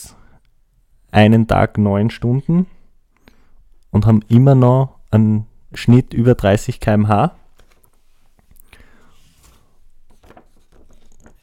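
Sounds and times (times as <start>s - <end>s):
speech: 1.1s - 2.8s, 3.9s - 7.4s
sheets of paper rustling and crinkling: 7.4s - 11.4s.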